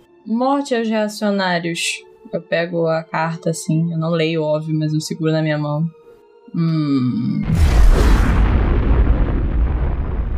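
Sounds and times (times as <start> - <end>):
speech: 0.2 - 8.1
loud deep explosion: 7.4 - 10.3
debris-like crackle: 7.5 - 10.3.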